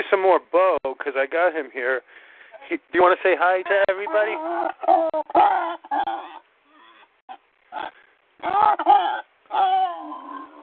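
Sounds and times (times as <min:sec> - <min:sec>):
speech: 0:00.1 - 0:06.4, 0:07.7 - 0:10.5
pig grunting and squealing: 0:03.5 - 0:07.1, 0:07.7 - 0:10.6.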